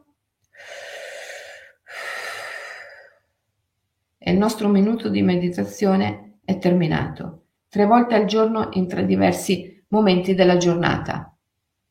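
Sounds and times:
slow deep breath taken to release a mudra after meditation: 0.5 - 3.4
speech: 4.3 - 11.3.

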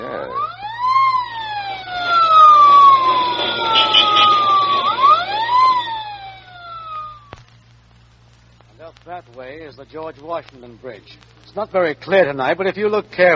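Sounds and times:
emergency vehicle siren wailing: 0.0 - 7.4
road traffic rumble: 0.0 - 13.3
speech: 9.8 - 13.3.

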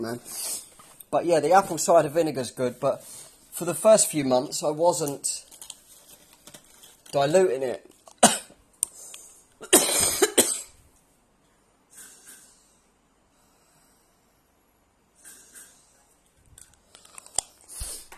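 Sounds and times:
speech: 0.0 - 5.5, 7.1 - 7.9
person coughing close to the microphone: 8.2 - 8.6, 9.6 - 10.8.

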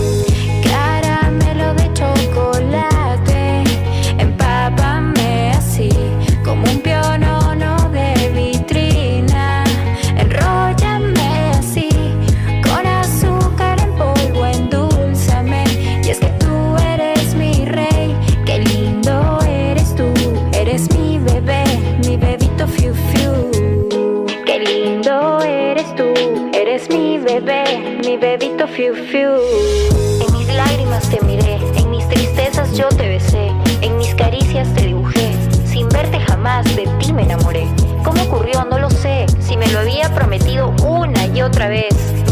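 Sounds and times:
pop song with thumping beat, bass and sung vocals: 0.0 - 42.3.

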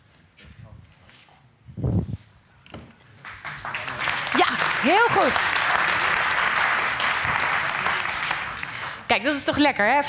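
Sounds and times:
room full of people applauding: 3.2 - 9.3
speech: 4.8 - 5.6, 9.2 - 10.0.

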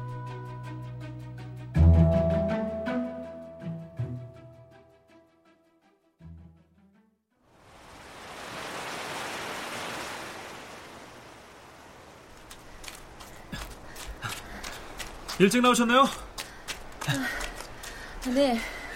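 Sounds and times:
musical notes: 0.0 - 4.9
ocean waves washing ashore on a beach: 7.5 - 16.1
speech: 15.4 - 16.3, 17.1 - 17.4, 18.2 - 18.8.

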